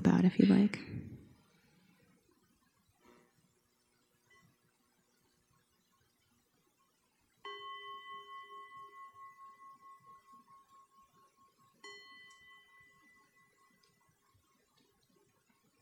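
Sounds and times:
speech: 0.2s - 1.0s
meditation bell struck and ringing: 7.4s - 14.1s.

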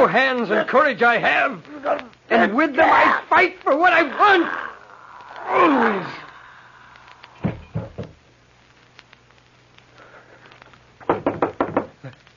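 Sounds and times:
speech: 0.0s - 4.6s, 5.5s - 6.2s
knocking on a door: 7.4s - 8.2s, 11.1s - 12.0s.

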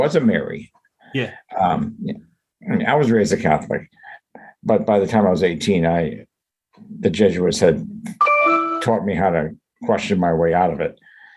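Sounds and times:
speech: 0.0s - 4.0s, 4.6s - 11.1s
computer email notification chime: 8.2s - 9.0s.

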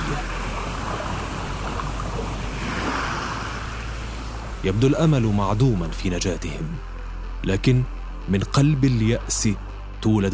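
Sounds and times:
sea waves washing against the shore with deep low rumble: 0.0s - 6.8s
speech: 4.6s - 10.3s.

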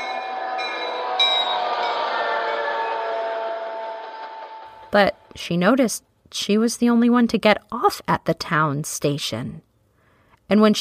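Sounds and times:
train pulling into a station rumbling: 0.0s - 5.9s
speech: 4.9s - 9.7s, 10.5s - 10.7s.

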